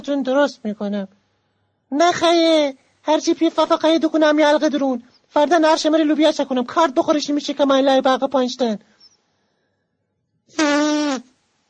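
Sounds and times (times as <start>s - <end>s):
speech: 0.0s - 1.2s, 1.9s - 8.9s, 10.5s - 11.3s
fart: 10.6s - 11.4s.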